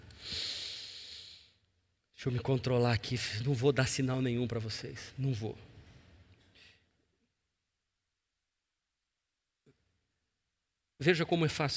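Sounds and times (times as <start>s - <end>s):
long deep diaphragmatic breath: 0.1s - 1.6s
speech: 2.2s - 5.7s, 11.0s - 11.7s.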